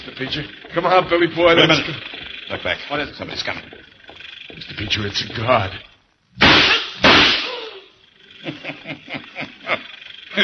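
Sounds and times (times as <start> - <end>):
speech: 0.1 - 3.9, 4.5 - 6.7
laughter: 0.2 - 3.7, 8.2 - 10.4
gunshots during a bank robbery: 6.4 - 7.7.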